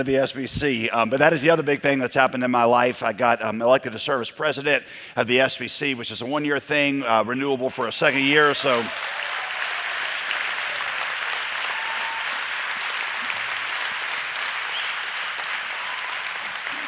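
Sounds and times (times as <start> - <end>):
speech: 0.0 - 9.3
audience applause: 8.0 - 16.8.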